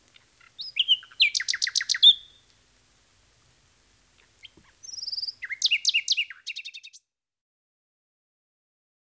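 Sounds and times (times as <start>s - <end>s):
common nightingale song: 0.0s - 7.1s.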